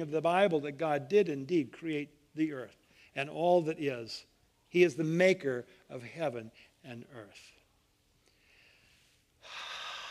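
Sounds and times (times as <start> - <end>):
speech: 0.0 - 7.6
deep inhaled breath: 8.3 - 10.0.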